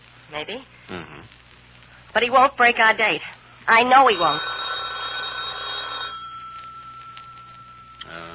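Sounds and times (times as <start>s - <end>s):
steady hum: 0.0s - 8.3s
speech: 0.3s - 1.4s, 2.1s - 4.5s
telephone bell ringing: 4.0s - 8.3s.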